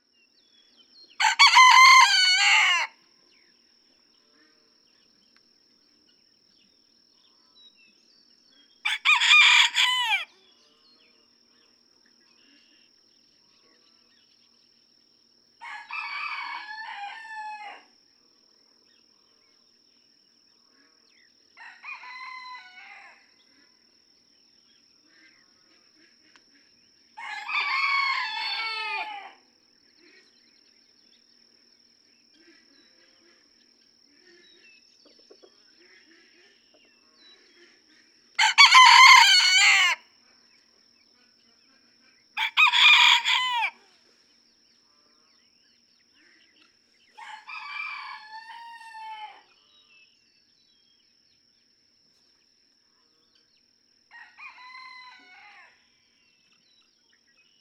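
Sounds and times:
Red Junglefowl rooster crowing in a barnyard in Kentucky: 1.2s - 3.0s, 8.8s - 10.4s, 15.6s - 17.9s, 21.6s - 23.3s, 27.2s - 29.4s, 38.4s - 40.0s, 42.4s - 43.9s, 47.2s - 49.5s, 54.1s - 55.8s.

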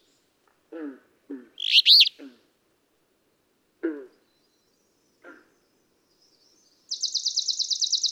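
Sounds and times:
Alder flycatcher short low nasal calls: 1.6s - 2.2s.

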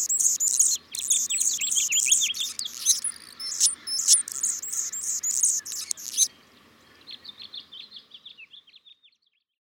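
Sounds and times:
Anna's hummingbird song: 0.0s - 6.3s
Anna's hummingbird thin chips and squeaks: 0.0s - 6.3s.

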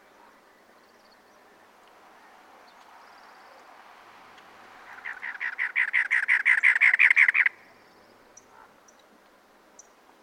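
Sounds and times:
cactus wren song: 0.0s - 10.2s.

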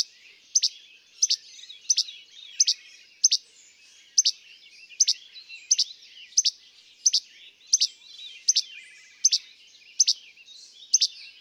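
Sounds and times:
least flycatcher calling che-bek: 0.0s - 3.4s, 5.0s - 10.2s, 10.9s - 11.2s.

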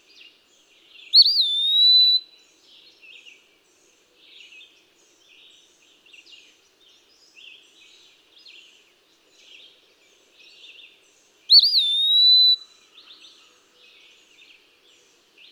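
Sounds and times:
eastern wood-pewee singing a sweet whistled phrase: 1.2s - 2.2s, 11.5s - 12.6s.

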